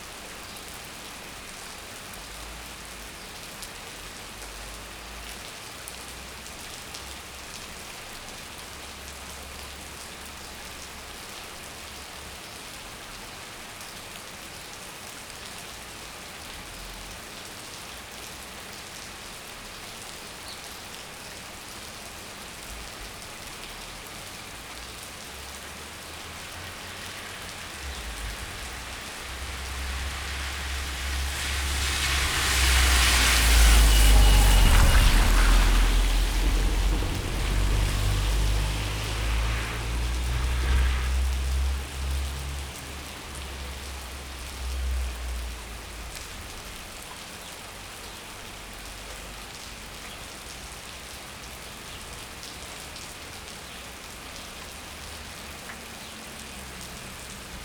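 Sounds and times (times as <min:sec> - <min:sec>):
rain at a closed bakery terrace in Potamia on Thassos: 0:00.0 - 0:57.6
car passing by a closed bakery terrace on Thassos: 0:23.0 - 0:47.0.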